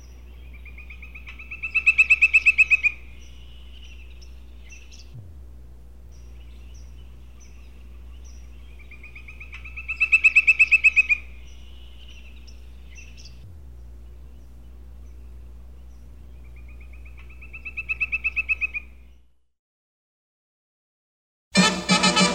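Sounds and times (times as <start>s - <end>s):
steady low hum: 0.0s - 19.5s
woodpecker call of sharp high-pitched notes: 0.5s - 4.0s, 6.2s - 13.3s, 16.4s - 19.0s.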